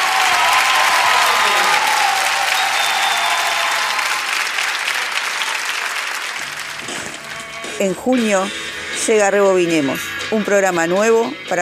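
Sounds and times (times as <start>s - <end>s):
audience applause: 0.0s - 7.6s
speech: 7.8s - 11.6s.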